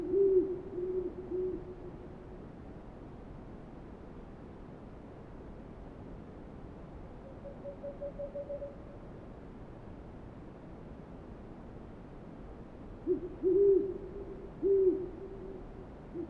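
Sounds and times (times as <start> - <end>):
owls hooting: 0.0 - 1.7, 13.1 - 16.2
steady background hiss: 0.0 - 16.2.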